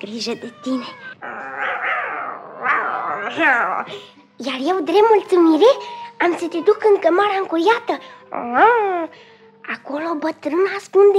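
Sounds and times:
speech: 0:00.0 - 0:01.4, 0:03.3 - 0:09.3, 0:09.9 - 0:11.1
several cats meowing insistently for food: 0:00.1 - 0:03.7.

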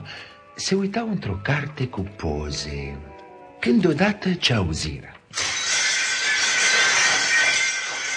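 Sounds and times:
speech: 0:00.6 - 0:05.5
window glass shattering: 0:05.3 - 0:08.1.

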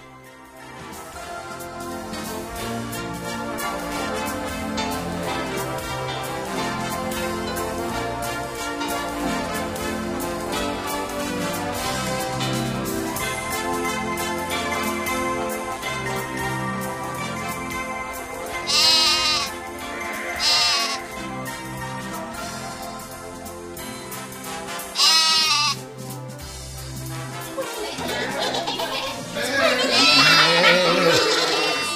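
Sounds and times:
busy musical backdrop: 0:00.0 - 0:31.9
young goats bleating: 0:18.6 - 0:19.6, 0:20.3 - 0:21.1, 0:25.0 - 0:25.8, 0:29.2 - 0:31.9
laughter: 0:27.3 - 0:31.9.

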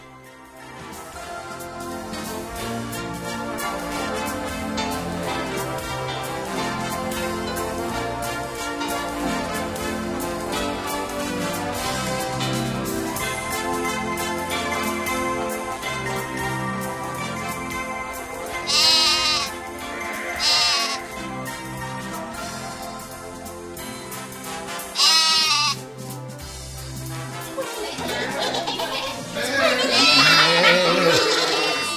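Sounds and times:
steady music: 0:00.0 - 0:31.9
goats bleating: 0:18.6 - 0:19.6, 0:20.3 - 0:21.1, 0:25.0 - 0:25.8, 0:29.2 - 0:31.9
laughter: 0:27.3 - 0:31.9.

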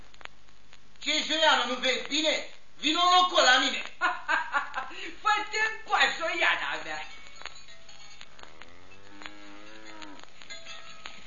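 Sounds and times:
speech: 0:01.0 - 0:07.1
cow mooing: 0:08.3 - 0:10.3.

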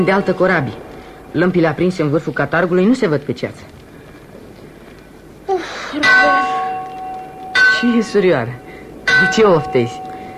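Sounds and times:
ship's bell ringing at sea in fog: 0:00.0 - 0:02.0, 0:06.0 - 0:10.3
speech: 0:00.0 - 0:03.8, 0:07.8 - 0:08.6, 0:09.2 - 0:10.0.

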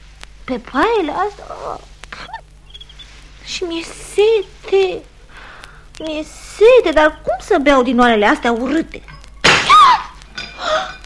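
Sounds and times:
speech: 0:00.5 - 0:01.9, 0:03.5 - 0:05.1, 0:06.0 - 0:09.1
clay pot smashing: 0:09.1 - 0:11.0
clay pot shards clattering: 0:10.3 - 0:11.0.

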